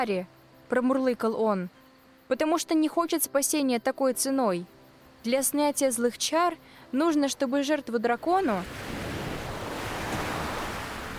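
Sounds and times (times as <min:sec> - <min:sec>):
speech: 0:00.0 - 0:08.9
churning sea water with waves and surf: 0:08.5 - 0:11.1.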